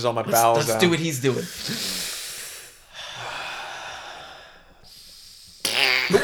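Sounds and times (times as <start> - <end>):
speech: 0.0 - 2.0
person breathing heavily in an exaggerated breathing exercise: 1.4 - 5.6.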